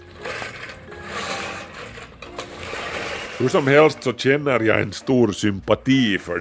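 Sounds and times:
manual push reel mower cutting grass on a small home lawn in Espoo Finland: 0:00.0 - 0:04.0
speech: 0:03.4 - 0:06.3.

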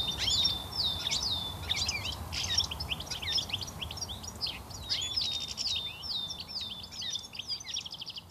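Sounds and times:
European goldfinch singing: 0:00.0 - 0:08.2
light background noise: 0:00.0 - 0:08.2.

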